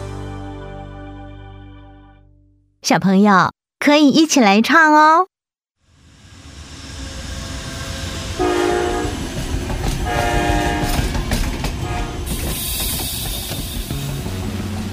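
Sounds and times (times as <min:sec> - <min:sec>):
speech: 0:02.8 - 0:05.3
toy train horn toots: 0:08.4 - 0:09.2, 0:10.0 - 0:11.1, 0:11.8 - 0:12.4.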